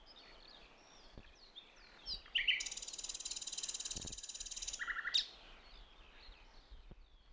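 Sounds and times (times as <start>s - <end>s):
common nightingale Luscinia megarhynchos song: 0.0s - 7.3s.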